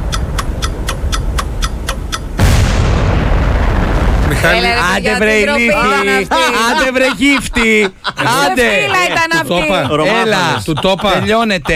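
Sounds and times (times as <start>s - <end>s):
countdown ticks in a radio call-in game: 0.0s - 2.6s
bomb explosion sound effect in a radio call-in game: 2.4s - 6.5s
speech: 4.4s - 11.7s
laughter: 4.6s - 11.7s.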